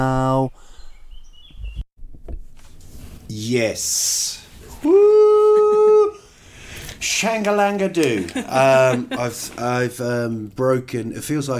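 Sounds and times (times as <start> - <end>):
faint birds chirping outdoors: 0.1 - 1.9
speech: 3.3 - 4.4, 7.2 - 11.5
laughter: 4.9 - 6.2, 8.0 - 9.9.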